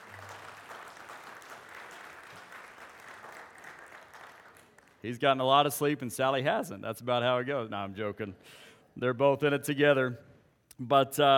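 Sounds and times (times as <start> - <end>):
audience applauding: 0.0 - 5.0
speech: 5.0 - 11.3.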